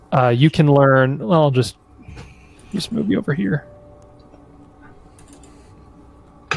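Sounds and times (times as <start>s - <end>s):
speech: 0.1s - 1.8s, 2.7s - 3.7s
external computer keyboard typing: 5.1s - 5.6s.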